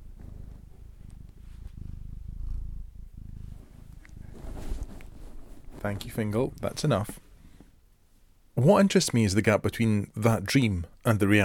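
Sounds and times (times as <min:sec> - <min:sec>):
cat purring: 0:00.0 - 0:07.6
speech: 0:05.8 - 0:07.2, 0:08.6 - 0:11.4.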